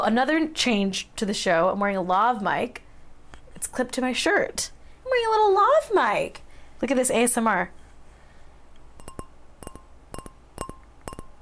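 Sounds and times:
speech: 0.0s - 2.8s, 3.6s - 7.8s
wine glass clinking during a toast: 9.0s - 11.3s.

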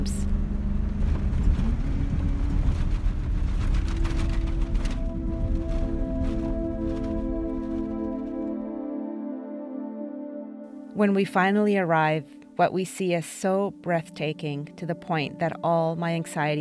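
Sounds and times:
4x4 truck engine roaring and straining over sand dunes: 0.0s - 8.5s
4x4 truck tyres rumbling and crunching over loose sand dunes: 1.7s - 8.3s
speech: 11.0s - 16.5s.

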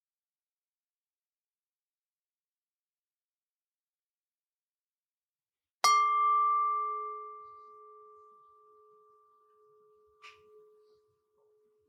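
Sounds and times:
meditation bell ringing: 5.9s - 10.9s.

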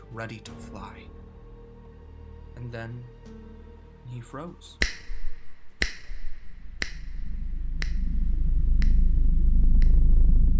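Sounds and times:
speech: 0.1s - 1.2s, 2.6s - 5.0s
finger snaps: 4.8s - 7.2s, 7.8s - 8.1s, 8.8s - 9.1s, 9.8s - 10.0s
low droning rumble: 5.2s - 10.5s.

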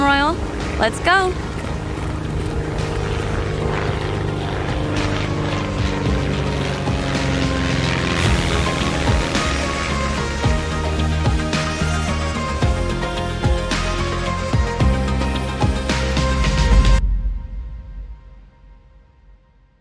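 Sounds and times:
private jet engine droning in flight: 0.0s - 17.0s
speech: 0.4s - 1.5s.

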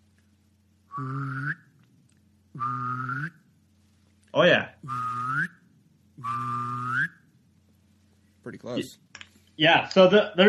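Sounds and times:
person mimicking a duck's whistling call with their mouth: 0.9s - 1.7s, 2.6s - 3.4s, 4.8s - 5.6s, 6.2s - 7.2s
speech: 1.0s - 1.6s, 4.4s - 5.0s, 8.6s - 9.0s, 9.6s - 10.4s.

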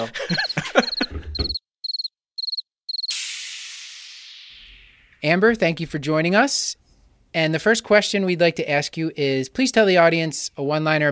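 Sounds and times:
speech: 0.0s - 0.8s, 5.2s - 6.8s, 7.4s - 11.0s
laughter: 0.0s - 1.5s
crickets chirping in short trills: 0.3s - 3.1s.

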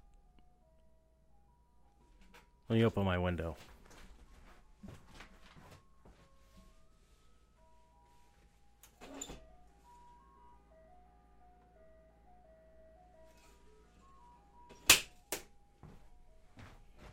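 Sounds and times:
ice cream truck music-box jingle: 0.0s - 17.1s
speech: 2.7s - 3.7s.

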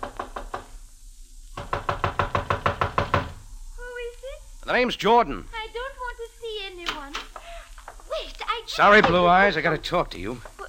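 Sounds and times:
knocking on the door of a houseboat anchored on the Nile: 0.0s - 0.7s, 1.6s - 3.4s, 8.9s - 9.4s
speech: 4.7s - 5.5s, 8.8s - 10.5s.

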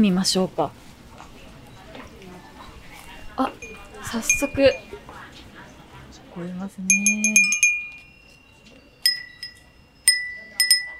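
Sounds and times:
speech: 0.0s - 0.9s, 3.4s - 4.9s, 6.4s - 7.6s
glass wind chime with daruma design tinkling in a shop: 3.6s - 5.0s, 6.9s - 10.9s.

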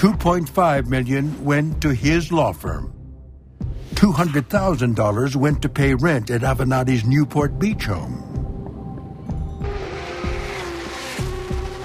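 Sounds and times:
speech: 0.0s - 2.9s, 4.0s - 8.3s
race car engine roaring: 9.6s - 11.8s
race car tires squealing: 9.6s - 11.8s.

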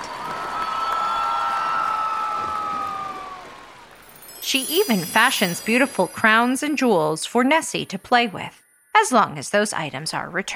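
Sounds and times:
sustained high-pitched whoops from crowd: 0.0s - 4.0s
crowd clapping and cheering: 0.0s - 4.3s
speech: 4.5s - 10.5s.

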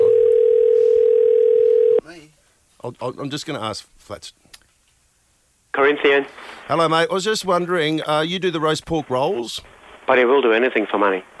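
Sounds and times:
electronic telephone ringing tone during outgoing call: 0.0s - 2.0s
speech: 2.8s - 4.4s, 5.8s - 11.3s.

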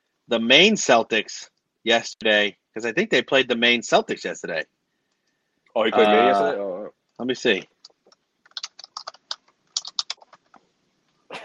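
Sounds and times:
speech: 0.3s - 4.8s, 5.8s - 7.7s
typing on a computer keyboard: 7.8s - 10.6s.

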